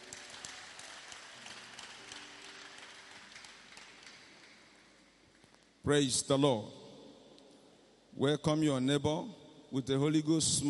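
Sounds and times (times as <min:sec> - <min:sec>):
crowd clapping: 0:00.0 - 0:05.1
speech: 0:05.8 - 0:06.8, 0:08.2 - 0:10.6.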